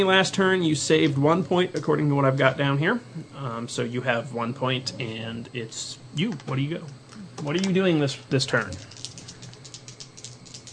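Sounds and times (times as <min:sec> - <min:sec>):
speech: 0:00.0 - 0:09.0
dice rattling and rolling: 0:08.6 - 0:10.7.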